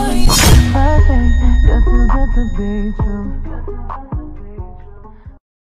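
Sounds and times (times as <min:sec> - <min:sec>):
soft tone: 0:00.2 - 0:03.6.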